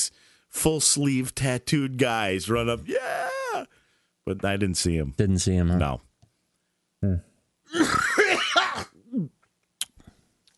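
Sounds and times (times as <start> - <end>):
speech: 0.0 - 6.1, 7.0 - 8.0
throat clearing: 7.1 - 9.4
harsh bout of person coughing: 7.7 - 9.3.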